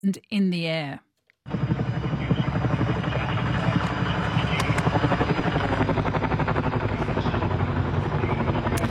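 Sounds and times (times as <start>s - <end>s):
speech: 0.0s - 1.7s
helicopters flying over a wildfire in the US: 1.5s - 8.8s.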